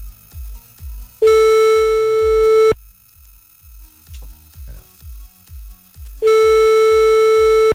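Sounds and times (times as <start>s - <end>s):
faint rhythmic ticking: 0.0s - 7.7s
telephone ringback tone during an outgoing call: 1.2s - 2.8s, 6.2s - 7.7s.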